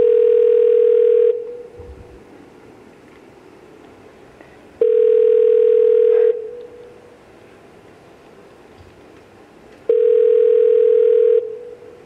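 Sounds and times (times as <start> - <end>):
electronic telephone ringing tones on a call: 0.0 - 1.7, 4.8 - 6.6, 9.9 - 11.8.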